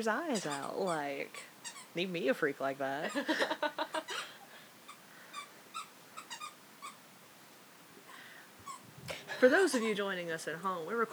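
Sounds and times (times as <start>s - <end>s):
speech: 0.0s - 3.8s, 9.4s - 11.1s
squeaky toy squeaking as a female dog chews it at home: 0.2s - 2.0s, 4.9s - 7.0s.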